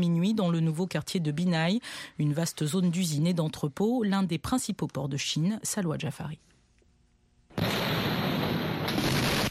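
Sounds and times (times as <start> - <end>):
speech: 0.0 - 6.5
loud sustained explosion blast: 7.6 - 9.4.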